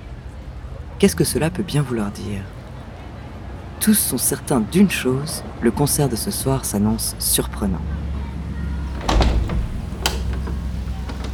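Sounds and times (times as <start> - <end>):
speech: 1.0 - 2.6, 3.8 - 8.0
sharp mechanical clunks of concert hall doors sliding open: 8.9 - 11.3.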